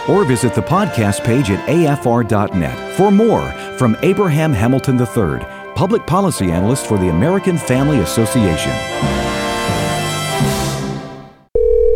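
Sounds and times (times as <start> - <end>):
speech: 0.0 - 9.3
music: 0.0 - 11.5
telephone ringing with an electronic tone: 11.5 - 11.9.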